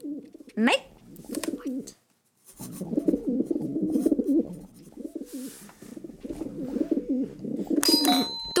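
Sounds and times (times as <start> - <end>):
pigeons cooing in a town square: 0.0 - 2.0, 2.6 - 8.0
speech: 0.6 - 0.9
faint metallic ring: 7.8 - 8.5.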